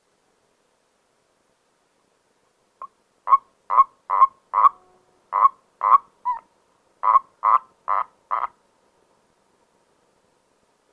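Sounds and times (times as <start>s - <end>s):
common toad croaking: 2.8s - 6.4s, 7.0s - 8.6s.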